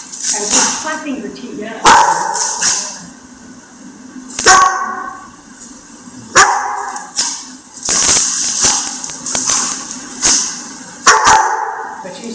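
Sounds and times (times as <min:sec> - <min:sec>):
speech: 0:00.3 - 0:02.8
dog barking and yipping playfully: 0:01.8 - 0:02.8, 0:04.4 - 0:05.2, 0:06.3 - 0:07.1, 0:11.0 - 0:12.0.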